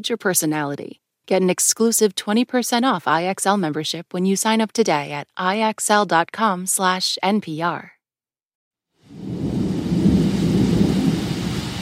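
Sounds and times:
speech: 0.0s - 8.0s
torrential rain from a thunderstorm in Boykin South Carolina: 9.0s - 11.8s
deep rumbling thunder from a thunderstorm in Boykin South Carolina: 9.1s - 11.8s.

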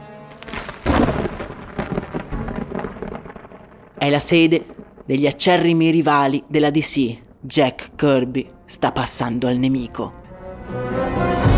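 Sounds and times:
steady rain on a rainy day: 0.1s - 8.8s
loud clap of thunder rumbling: 0.3s - 9.2s
speech: 4.0s - 10.8s.

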